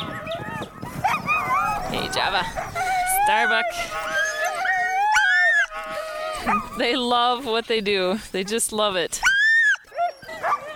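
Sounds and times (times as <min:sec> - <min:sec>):
sled dogs howling and whining: 0:00.0 - 0:07.3, 0:09.2 - 0:10.7
speech: 0:01.9 - 0:02.7, 0:03.3 - 0:04.3, 0:06.4 - 0:09.3.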